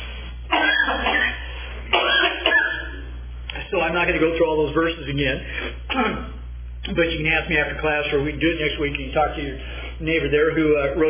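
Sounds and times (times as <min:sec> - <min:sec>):
low steady hum: 0:00.0 - 0:11.0
person coughing: 0:00.5 - 0:03.0, 0:05.6 - 0:06.4
speech: 0:03.7 - 0:11.0.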